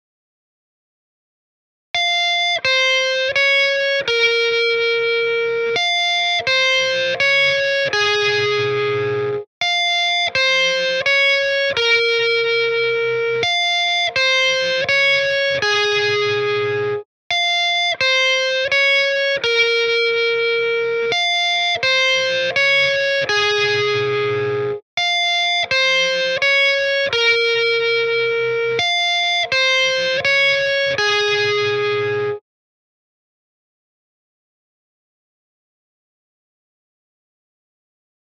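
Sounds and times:
guitar: 2.0 - 32.4.

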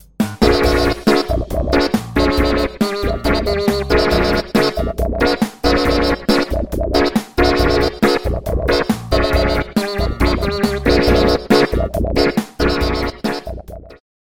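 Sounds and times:
trembling rippling synth lead: 0.4 - 14.0.

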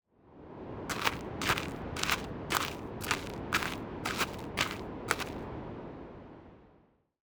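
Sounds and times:
footsteps on gravel: 0.9 - 5.4.

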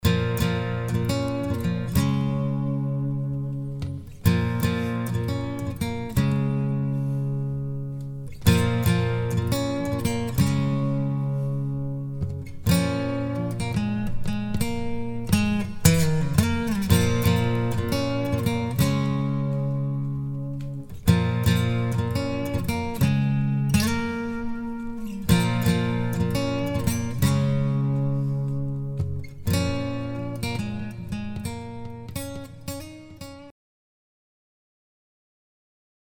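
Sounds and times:
dreamy wet guitar: 0.0 - 33.5.

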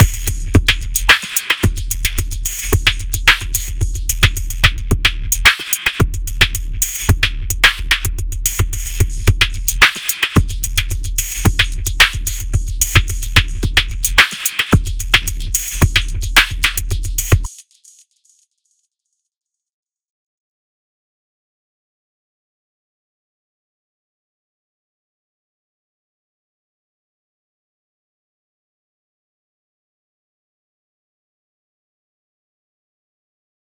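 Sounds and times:
drum loop: 0.0 - 17.5.

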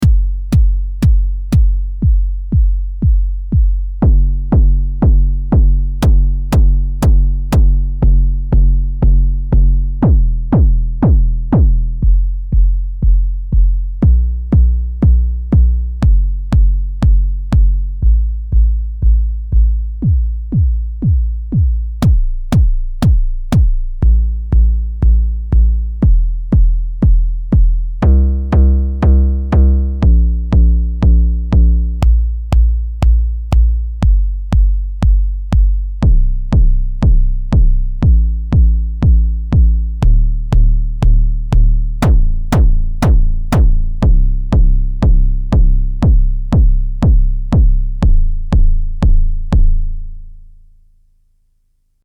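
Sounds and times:
analog synthesized kick drum: 0.0 - 50.4.

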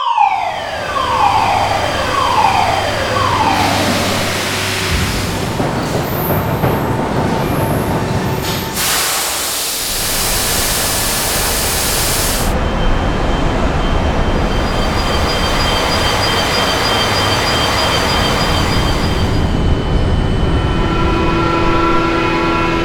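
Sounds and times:
factory ambience: 0.2 - 22.8.

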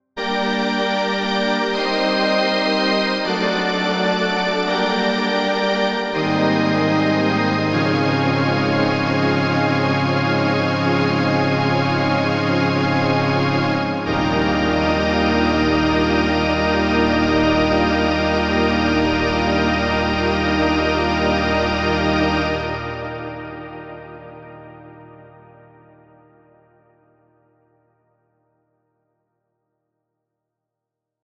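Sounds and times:
strings with hall reverb: 0.2 - 26.0.

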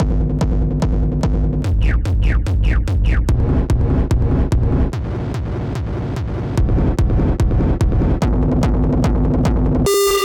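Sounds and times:
bombo bass drum: 0.0 - 10.1.

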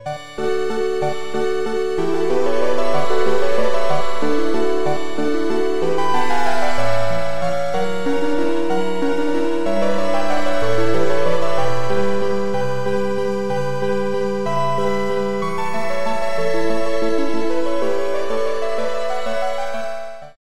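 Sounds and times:
gloomy keys: 0.0 - 20.4.

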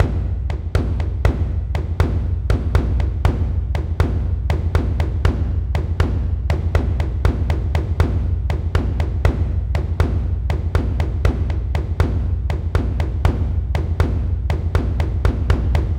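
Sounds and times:
taiko drums: 0.0 - 15.9.

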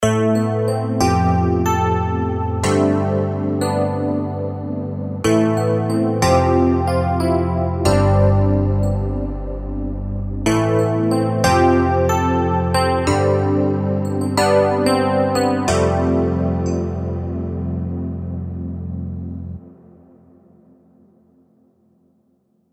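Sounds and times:
MKS80 synthesizer with chorus: 0.0 - 21.8.

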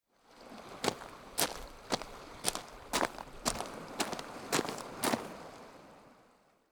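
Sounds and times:
footsteps on coarse gravel: 0.7 - 5.4.

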